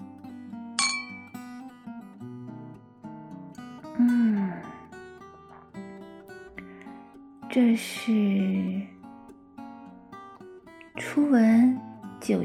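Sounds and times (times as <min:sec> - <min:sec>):
soft music: 0:00.0 - 0:12.4
glasses clinking in a toast: 0:00.8 - 0:01.4
speech: 0:04.0 - 0:04.4, 0:07.6 - 0:08.9, 0:11.2 - 0:12.4.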